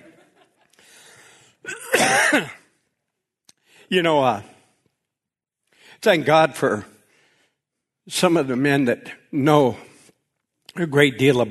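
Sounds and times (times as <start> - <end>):
person clearing a dry throat: 1.6 - 2.7
speech: 3.9 - 4.5, 6.0 - 7.0, 8.0 - 9.9, 10.8 - 11.4.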